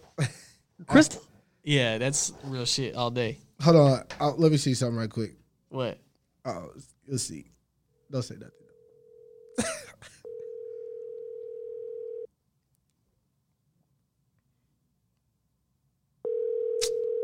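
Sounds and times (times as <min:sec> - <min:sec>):
speech: 0:00.9 - 0:07.5, 0:08.1 - 0:08.6
outgoing phone call ringback tone: 0:08.7 - 0:09.6, 0:10.2 - 0:12.3, 0:16.3 - 0:17.2.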